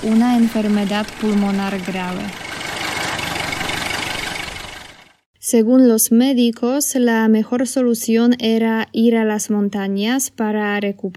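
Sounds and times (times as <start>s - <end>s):
speech: 0.0s - 2.4s, 5.5s - 11.1s
car engine idling in a car workshop: 0.0s - 5.2s.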